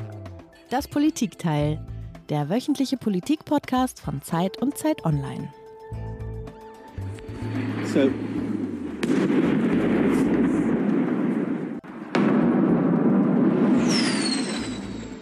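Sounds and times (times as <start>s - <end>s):
speech: 0.7s - 5.6s, 7.9s - 8.3s, 9.2s - 10.3s
high falling whine: 7.2s - 15.2s
dense sustained rumbling roar after missile strikes: 7.3s - 11.5s
heavy explosions in the centre of Kyiv, Ukraine: 7.3s - 15.2s.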